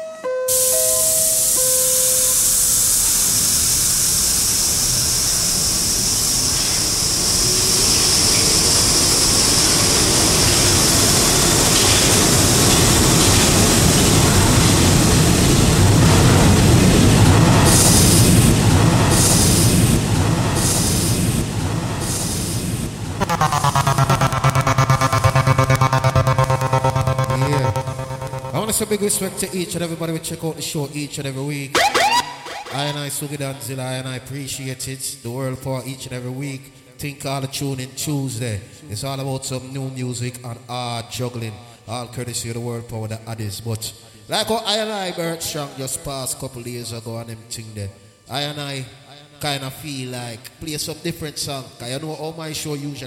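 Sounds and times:
subway express train rumbling along the rails: 0:02.4 - 0:23.2
rhythmic clatters of subway train: 0:23.1 - 0:30.2
speech: 0:28.8 - 0:31.9, 0:32.7 - 0:53.0.

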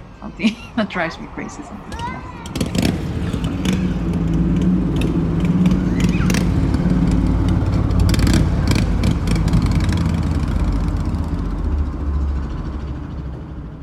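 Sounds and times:
cars driving past on a street in Malmö, Sweden: 0:00.0 - 0:13.8
continuous low engine drone of street traffic: 0:00.0 - 0:13.8
speech: 0:00.2 - 0:02.4.

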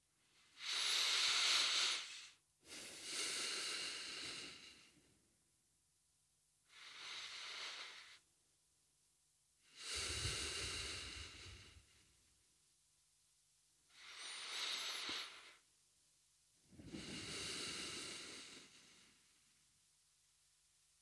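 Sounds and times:
deep slow breaths in and out during a guided body-awareness exercise: 0:00.2 - 0:05.2, 0:06.7 - 0:08.3, 0:09.6 - 0:12.3, 0:13.9 - 0:15.7, 0:16.7 - 0:19.6.

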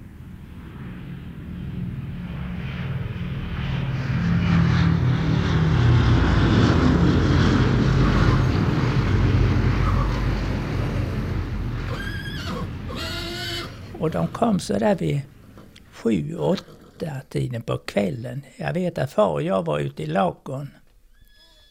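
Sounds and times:
hundreds of English propeller aircraft droning overhead: 0:00.0 - 0:18.2
high whinny-like cry: 0:09.8 - 0:10.4, 0:11.8 - 0:13.9, 0:21.1 - 0:21.6
speech: 0:14.0 - 0:15.4, 0:16.0 - 0:20.8.

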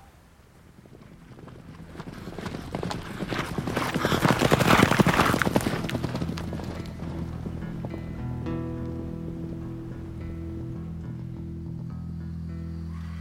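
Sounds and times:
horse hooves clip-clopping: 0:00.4 - 0:11.9
low rumble: 0:05.6 - 0:13.1.

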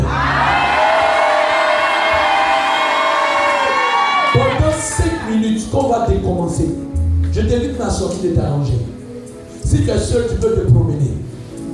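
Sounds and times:
audience shouting amen in unison during prayer: 0:00.0 - 0:05.3
scattered voices and cheers: 0:00.0 - 0:05.4
speech: 0:06.4 - 0:09.0, 0:09.7 - 0:11.2.

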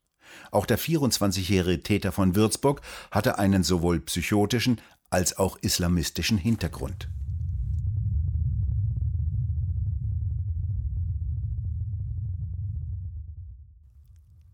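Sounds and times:
speech: 0:00.5 - 0:07.3
faint crackling: 0:06.2 - 0:08.6
low rumble of wind on Mars: 0:06.6 - 0:14.5.

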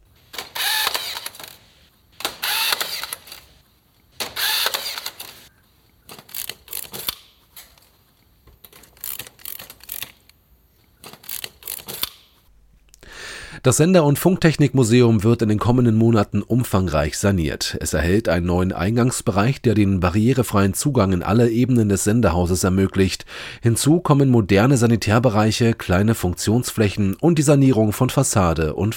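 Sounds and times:
rebar tying tool clicking: 0:00.3 - 0:01.6, 0:02.2 - 0:03.5, 0:04.2 - 0:05.5, 0:06.1 - 0:07.9, 0:08.5 - 0:10.4, 0:11.0 - 0:12.4
wire twisting while tying rebar: 0:04.2 - 0:12.4
speech: 0:13.6 - 0:28.9.

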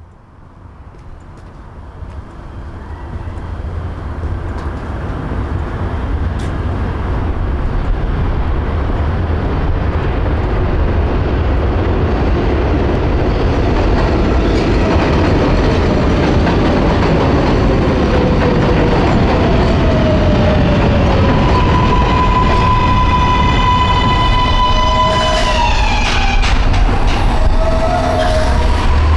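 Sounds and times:
elevated 7 subway train passing in Long Island City Queens New York: 0:00.0 - 0:29.1
subway train brakes squealing: 0:02.5 - 0:03.6, 0:21.2 - 0:29.1.

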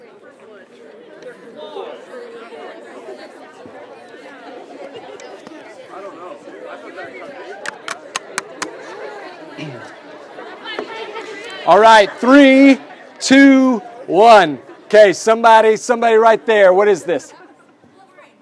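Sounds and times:
audience members chatting with their neighbors: 0:00.0 - 0:18.3
sharp clicks or claps: 0:07.6 - 0:08.8
speech: 0:11.7 - 0:17.4.

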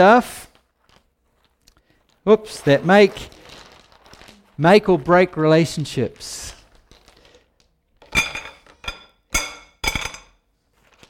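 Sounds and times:
speech: 0:00.0 - 0:00.5, 0:02.3 - 0:03.4, 0:04.6 - 0:06.6
small Kiowa stones clattering into a hard container: 0:00.8 - 0:05.1, 0:06.6 - 0:07.4.

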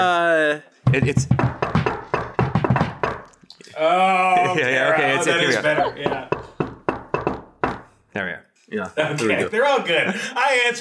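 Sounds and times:
speech: 0:00.0 - 0:01.9, 0:03.8 - 0:06.3, 0:08.2 - 0:10.8
secret knock on a closet door: 0:00.8 - 0:03.3, 0:05.7 - 0:07.9
laughter: 0:04.2 - 0:06.6, 0:09.0 - 0:10.6.

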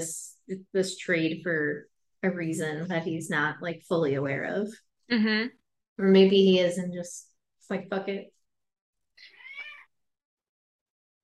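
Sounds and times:
speech: 0:00.0 - 0:08.4
cat meowing: 0:09.2 - 0:10.0.

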